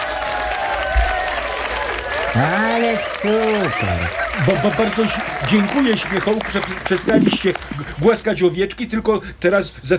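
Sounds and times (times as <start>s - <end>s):
applause and clapping from a group: 0.0s - 8.2s
speech: 2.4s - 9.9s
laughter: 3.5s - 8.2s.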